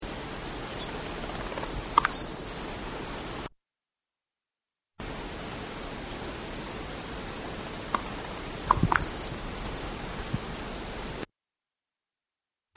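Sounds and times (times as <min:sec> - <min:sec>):
quiet background hiss: 0:00.0 - 0:03.5, 0:05.0 - 0:11.3
white-winged black tyrant song: 0:08.7 - 0:09.3.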